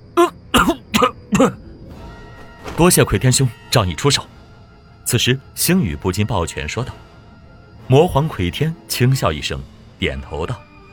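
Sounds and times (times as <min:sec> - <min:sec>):
injured man coughing violently: 0:00.0 - 0:01.6
speech: 0:01.4 - 0:01.6, 0:02.8 - 0:04.4, 0:05.1 - 0:07.1, 0:07.9 - 0:10.7.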